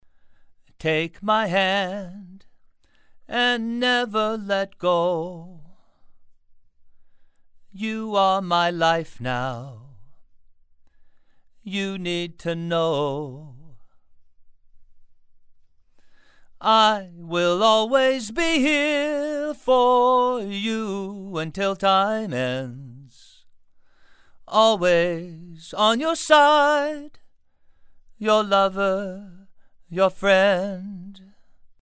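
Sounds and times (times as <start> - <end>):
male vocals through a tube microphone: 0.7 - 2.6, 3.2 - 6.0, 7.7 - 10.2, 11.6 - 14.0, 16.6 - 23.5, 24.4 - 27.2, 28.2 - 31.4.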